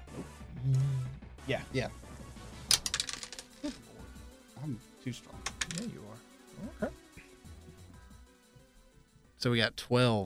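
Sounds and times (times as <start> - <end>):
speech: 1.5 - 2.0, 3.6 - 3.8, 4.6 - 7.0, 9.4 - 10.2
dice clattering across a tabletop: 2.7 - 3.8, 5.4 - 6.0.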